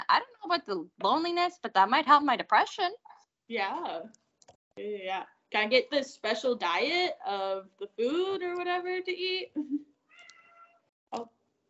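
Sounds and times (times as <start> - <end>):
speech: 0.1 - 4.2, 4.8 - 9.9, 11.1 - 11.4
cat meowing: 10.1 - 10.9.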